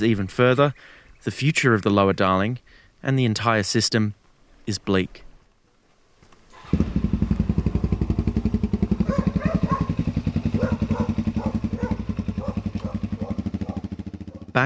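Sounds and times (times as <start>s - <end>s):
speech: 0.0s - 5.2s
man starting and riding a motorbike, engine roaring: 6.6s - 14.6s.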